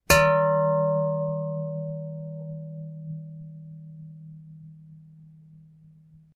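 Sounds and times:
metal hit hard impact: 0.0 - 3.4.

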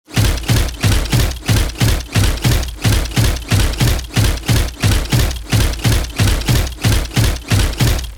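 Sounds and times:
robot support unit footsteps running: 0.0 - 8.1.

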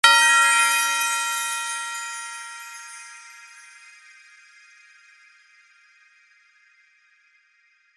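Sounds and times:
Christmas sleigh bells ringing: 0.0 - 3.8.

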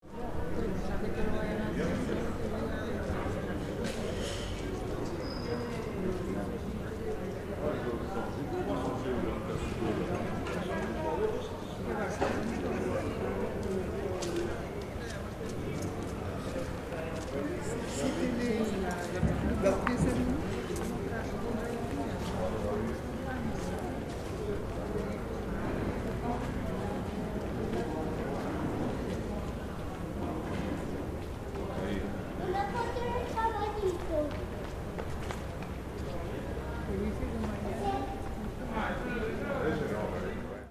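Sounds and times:
market ambience in a small village in Mali: 0.0 - 40.7.

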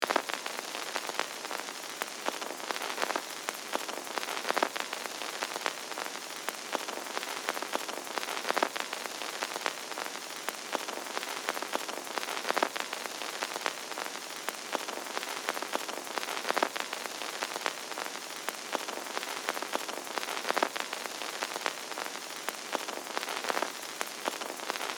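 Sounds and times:
old vintage film projector crackle: 0.0 - 24.9.

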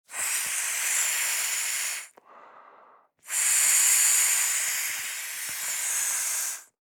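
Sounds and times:
inflatable rubber ring being inflated by blowing: 0.1 - 2.1, 3.3 - 6.7.

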